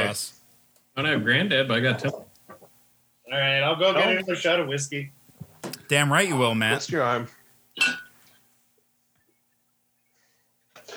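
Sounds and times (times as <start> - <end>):
speech: 1.0 - 2.3, 3.3 - 5.2, 5.9 - 8.0
glass clinking while mixing a drink: 7.8 - 8.2.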